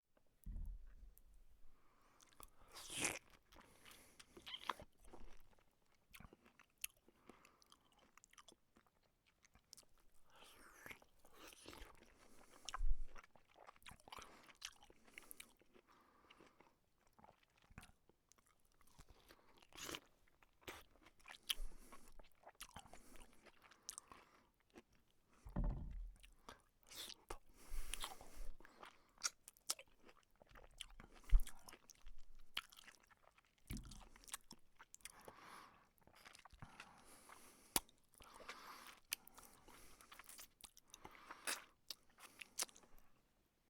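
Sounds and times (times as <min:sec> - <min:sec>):
eating a juicy piece of fruit: 0:02.1 - 0:43.0.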